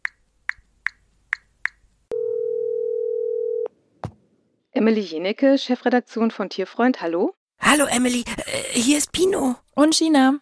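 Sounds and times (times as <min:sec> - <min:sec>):
telephone dial tone: 0:02.1 - 0:03.7
speech: 0:04.8 - 0:10.4.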